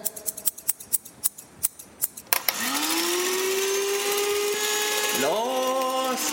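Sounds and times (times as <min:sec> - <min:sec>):
scissors snipping: 0:00.0 - 0:02.3
electric motor whirring to a high whine: 0:02.3 - 0:06.3.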